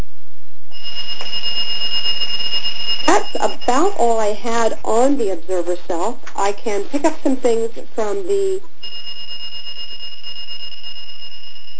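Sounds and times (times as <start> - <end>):
faint noisy background: 0.0 - 11.7
steady high-pitched whistling tone in a call: 0.7 - 4.2, 8.8 - 11.7
speech: 3.3 - 9.0.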